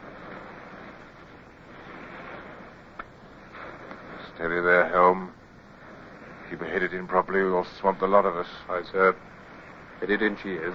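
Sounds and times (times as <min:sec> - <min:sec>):
surf rolling onto a tropic island beach in a land breeze: 0:00.0 - 0:10.7
speech: 0:04.4 - 0:05.4, 0:06.5 - 0:09.4, 0:10.0 - 0:10.7.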